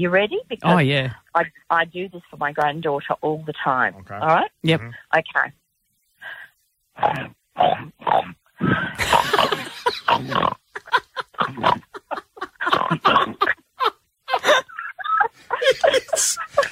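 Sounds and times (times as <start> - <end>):
speech: 0.0 - 5.6, 7.0 - 11.8, 15.6 - 16.7
person imitating a pig with snorting grunts and oinks: 7.0 - 10.6, 11.4 - 11.9
laughter: 8.9 - 16.7.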